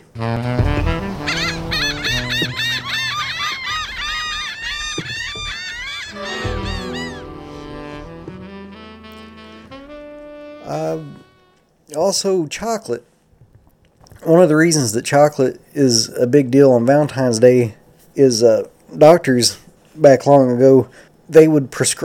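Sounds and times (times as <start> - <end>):
flock of geese honking outside the window: 0.0 - 11.6
speech: 0.2 - 0.7, 12.1 - 13.1, 14.3 - 22.0.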